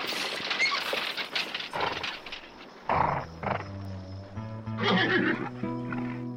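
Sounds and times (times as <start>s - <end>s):
horse hooves clopping and shuffling: 0.0s - 6.3s
horse neighing: 1.7s - 3.7s, 4.8s - 6.2s.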